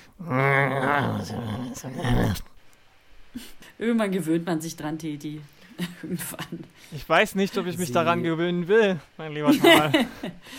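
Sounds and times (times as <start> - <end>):
loud rough throaty growl: 0.2 - 2.5
speech: 0.2 - 2.5, 3.4 - 10.5
laughter: 9.5 - 10.5.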